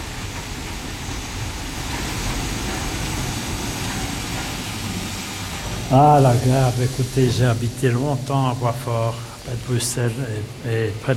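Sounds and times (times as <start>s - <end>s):
steam locomobile running on a local light railway: 0.0s - 11.1s
speech: 5.9s - 11.1s.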